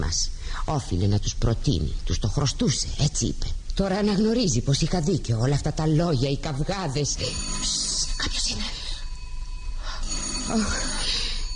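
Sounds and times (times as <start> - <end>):
low hum: 0.0 - 11.5
speech: 0.1 - 8.8, 10.5 - 11.1
electronic doorbell ringing: 7.1 - 11.5.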